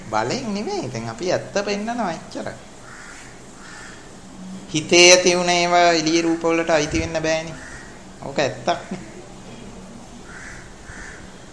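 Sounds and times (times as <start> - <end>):
steady hiss: 0.0 - 11.5
speech: 0.1 - 2.7, 4.7 - 9.1
crow cawing outside: 2.8 - 4.2, 7.5 - 9.2, 10.2 - 11.5.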